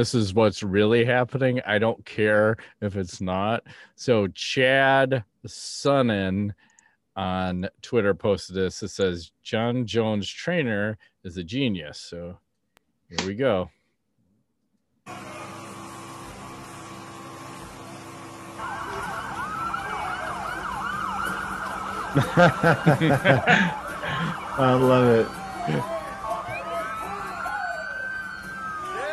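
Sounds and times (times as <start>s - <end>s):
speech: 0.0s - 12.4s, 13.1s - 13.8s, 15.1s - 15.5s, 22.1s - 23.8s, 24.6s - 26.0s
police car sirens wailing: 17.9s - 29.1s
people laughing: 22.0s - 26.6s.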